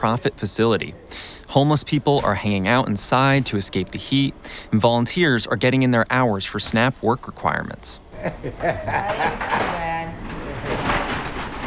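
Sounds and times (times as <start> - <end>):
speech: 0.0 - 9.9
laughter: 8.1 - 9.6
sliding door at a basement storage area rumbling open: 10.2 - 11.6.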